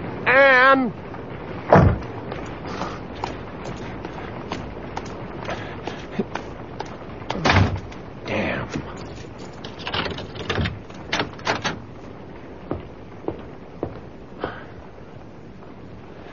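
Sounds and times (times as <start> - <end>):
steady hissing background: 0.0 - 16.3
speech: 0.4 - 1.0
door slamming hard: 1.7 - 3.9, 7.3 - 8.0, 8.8 - 11.9
heavy bang: 1.7 - 6.6.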